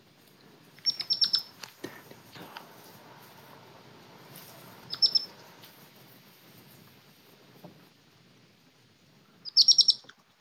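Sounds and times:
faint outdoor rustling: 0:00.0 - 0:10.4
baby hedgehog in a garden chirping to its mother: 0:00.8 - 0:01.6, 0:04.8 - 0:05.4, 0:09.4 - 0:10.1.

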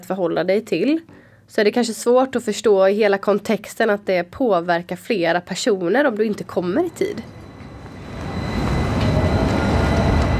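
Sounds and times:
speech: 0:00.1 - 0:07.4
faint metallic whine: 0:06.4 - 0:10.3
tram rumbling along its rails: 0:06.4 - 0:10.3.

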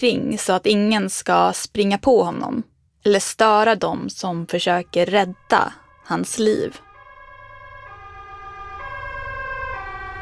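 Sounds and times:
speech: 0:00.0 - 0:06.8
ambulance siren wailing as ambulance arrives at a marathon: 0:04.5 - 0:10.2
low rumble of road traffic: 0:05.3 - 0:10.2.

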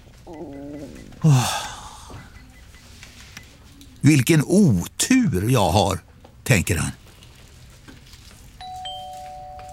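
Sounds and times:
speech: 0:00.3 - 0:01.6, 0:04.0 - 0:07.0
two-note ding-dong chime of a queue-number system: 0:08.6 - 0:09.7.

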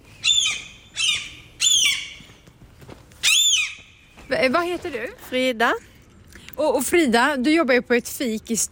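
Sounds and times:
seagull squawking: 0:00.2 - 0:02.3, 0:03.2 - 0:03.9
speech: 0:04.4 - 0:05.9, 0:06.6 - 0:08.7.

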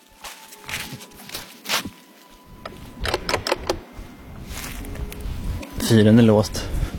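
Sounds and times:
footsteps crunching on an outdoor gravel path on the island of Fjuk: 0:00.0 - 0:03.0, 0:03.8 - 0:05.8
speech: 0:05.9 - 0:06.7.

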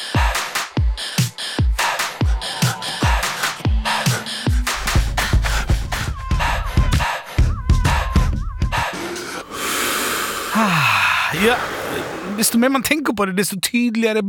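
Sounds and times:
song with driving beat: 0:00.0 - 0:09.0
rhythmic breathing exercise in a song: 0:00.0 - 0:12.4
speech: 0:11.4 - 0:14.2.

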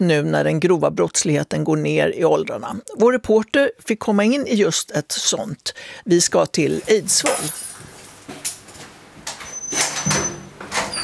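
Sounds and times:
speech: 0:00.0 - 0:07.7
heavy cell door in a youth prison in Eidsvoll Norway slamming shut: 0:09.5 - 0:11.0.

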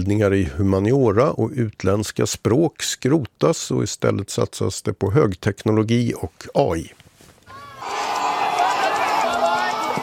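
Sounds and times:
speech: 0:00.0 - 0:07.1
large crowd of students cheering and shouting: 0:07.5 - 0:10.0.

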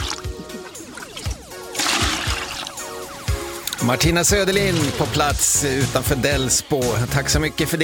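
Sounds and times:
rainwater trickling and pouring at a timber cabin outside Delsbo: 0:00.0 - 0:03.7, 0:04.3 - 0:05.6
speech: 0:03.8 - 0:07.8.

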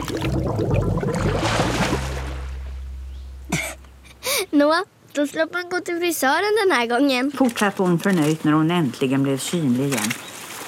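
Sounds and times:
water bubbling from a head held underwater in a waist-deep puddle: 0:00.0 - 0:04.3
low rumble: 0:00.0 - 0:04.5
speech: 0:00.5 - 0:01.2, 0:04.6 - 0:10.3.

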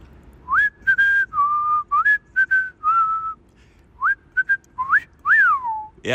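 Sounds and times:
person whistling a lively tune: 0:00.5 - 0:03.4, 0:04.0 - 0:06.0.

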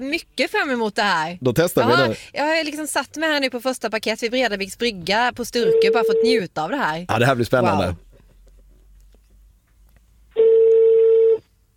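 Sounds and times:
speech: 0:00.0 - 0:08.1
telephone ringback tone of a call to a hotel reception: 0:05.6 - 0:06.3, 0:10.4 - 0:11.4.

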